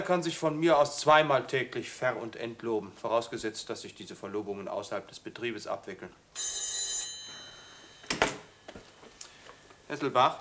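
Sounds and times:
speech: 0:00.0 - 0:06.7, 0:09.9 - 0:10.3
telephone bell ringing in an office: 0:06.4 - 0:08.9.

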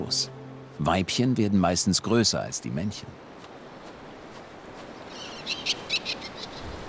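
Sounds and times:
speech: 0:00.0 - 0:03.3
hiss: 0:00.0 - 0:06.8
far-carrying calls of a slender bird: 0:05.0 - 0:06.7.

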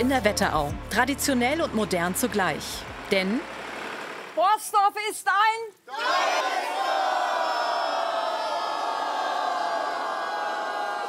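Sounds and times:
speech: 0:00.0 - 0:03.6, 0:04.4 - 0:06.7
crowd cheering in a village in the Wetterau region of Hesse: 0:05.9 - 0:11.0.

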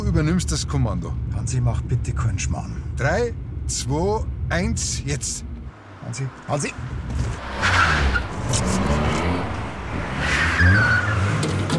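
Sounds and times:
speech: 0:00.2 - 0:07.8, 0:08.5 - 0:09.2, 0:10.2 - 0:11.0
car engine roaring with low exhaust noise: 0:05.2 - 0:11.7
tires squealing as the car swerves: 0:05.8 - 0:11.7.

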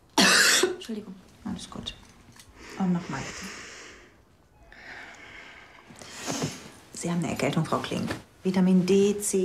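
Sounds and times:
speech: 0:00.9 - 0:02.1, 0:02.8 - 0:03.7, 0:07.0 - 0:09.4
deep breath in and out: 0:02.6 - 0:06.6.

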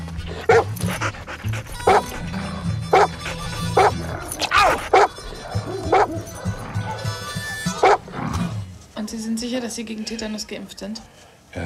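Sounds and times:
dog panting: 0:00.0 - 0:08.0
dog barking: 0:00.4 - 0:02.3, 0:02.9 - 0:07.0, 0:07.8 - 0:08.0
speech: 0:09.4 - 0:11.6.

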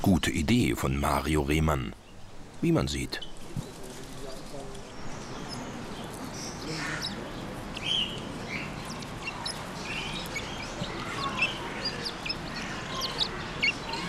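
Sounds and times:
speech: 0:00.1 - 0:02.0, 0:02.6 - 0:03.3
flock of vulturine guineafowl chirping and clucking while feeding: 0:05.4 - 0:13.9.

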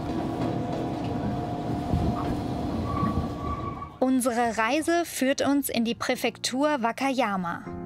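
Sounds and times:
train rumbling along rails, possibly heard from inside a carriage: 0:00.0 - 0:04.0
speech: 0:04.1 - 0:07.7.

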